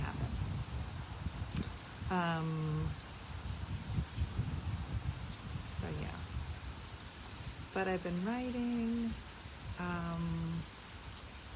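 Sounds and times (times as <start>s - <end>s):
rain falling: 0.0s - 11.5s
speech: 2.1s - 3.0s, 7.8s - 10.7s.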